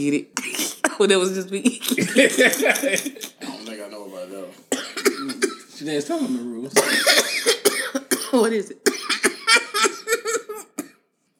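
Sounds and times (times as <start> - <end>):
speech: 0.0 - 0.4, 1.0 - 3.3, 5.8 - 9.1
laughter: 1.6 - 3.9, 9.4 - 10.8
person coughing harshly: 4.7 - 5.7, 6.8 - 11.0.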